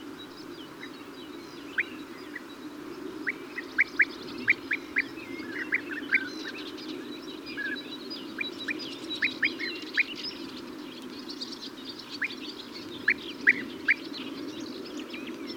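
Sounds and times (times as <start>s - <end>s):
European bee-eater Merops apiaster calling: 0.4s - 6.7s, 7.6s - 10.8s, 11.4s - 14.2s.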